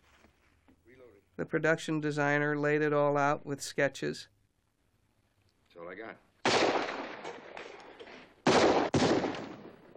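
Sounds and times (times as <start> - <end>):
speech: 1.1 - 4.3, 5.8 - 6.3
gunfire rumble from a Western film gunfight: 6.4 - 9.9
gunshots from a Western film gunfight: 6.4 - 9.9.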